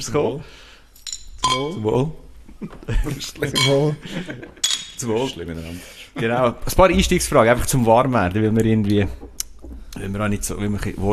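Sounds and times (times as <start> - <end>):
speech: 0.0 - 0.7, 1.4 - 11.1
glasses clinking in a toast: 1.0 - 2.4, 3.4 - 5.3
people laughing: 2.5 - 4.7.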